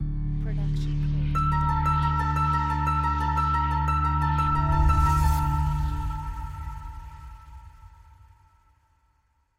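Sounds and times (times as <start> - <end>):
mysterious harp music: 1.0 - 7.2.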